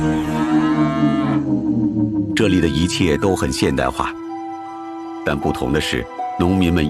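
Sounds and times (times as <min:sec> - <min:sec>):
cattle lowing and mooing on a modern farm: 0:00.2 - 0:01.6
speech: 0:02.4 - 0:04.2, 0:05.2 - 0:06.8.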